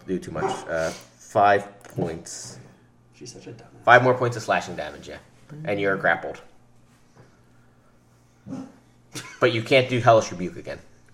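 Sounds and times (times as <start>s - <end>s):
low steady hum: 0.0s - 11.1s
speech: 0.1s - 2.6s, 3.2s - 6.5s, 8.5s - 10.9s
dog barking: 0.4s - 0.7s, 8.4s - 8.8s
dog yip: 8.4s - 8.8s.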